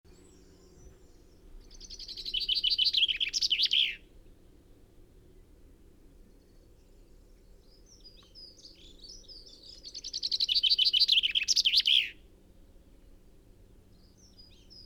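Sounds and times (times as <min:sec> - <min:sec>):
faint chirps: 0:00.1 - 0:04.0, 0:06.3 - 0:12.2
common chaffinch rattling descending song: 0:00.1 - 0:04.1, 0:06.3 - 0:12.3, 0:13.9 - 0:14.8.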